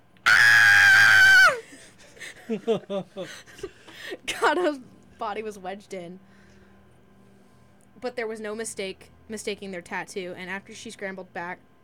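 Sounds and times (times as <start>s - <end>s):
woman screaming in fright: 0.2s - 1.6s
laughter: 1.8s - 3.9s
speech: 2.5s - 6.3s, 8.0s - 11.7s.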